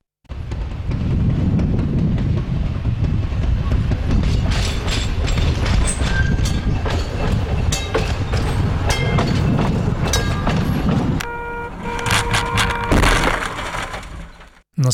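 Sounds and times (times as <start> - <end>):
city tram rumbling and clattering on rails: 0.3 - 14.6
tram wheels giving high ringing metallic squeals: 4.5 - 13.0.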